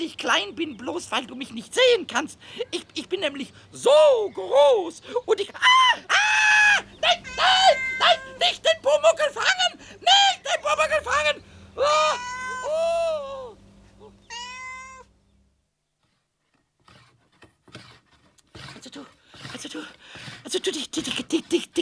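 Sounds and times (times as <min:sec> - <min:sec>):
speech: 0:00.0 - 0:13.4, 0:18.8 - 0:21.7
cat meowing: 0:06.4 - 0:08.7, 0:11.8 - 0:15.1
cat hissing: 0:06.6 - 0:08.4, 0:11.4 - 0:15.1.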